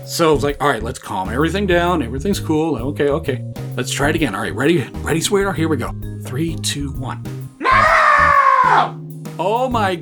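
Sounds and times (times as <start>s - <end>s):
speech: 0.1s - 7.4s, 8.8s - 10.0s
adult voice imitating a young girl's shrill scream: 7.6s - 9.0s.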